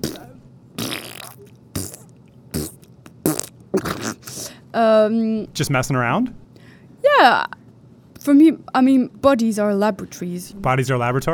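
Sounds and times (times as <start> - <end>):
recorded fart sounds: 0.0 - 4.4
speech: 4.7 - 6.4, 7.2 - 7.6, 8.2 - 11.3.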